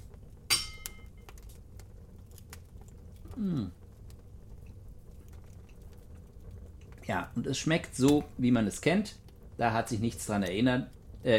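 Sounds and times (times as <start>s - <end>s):
glasses clinking in a toast: 0.5s - 1.1s
speech: 3.4s - 3.8s, 7.1s - 11.3s.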